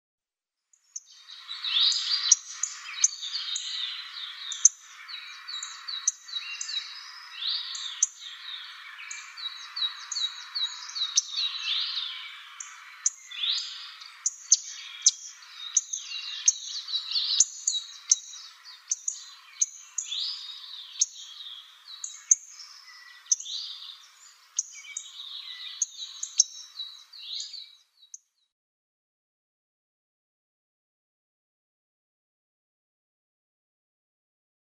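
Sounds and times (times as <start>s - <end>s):
Black-faced Bunting calls: 1.0s - 27.7s.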